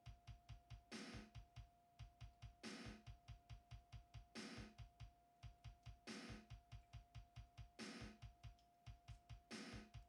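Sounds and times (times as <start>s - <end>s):
recorded drums playing: 0.0s - 10.0s.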